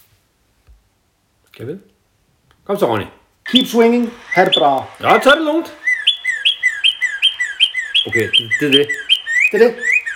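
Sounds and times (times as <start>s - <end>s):
speech: 1.6s - 2.0s, 2.7s - 5.8s, 8.1s - 9.9s
small red cardinal chirping: 3.4s - 10.1s.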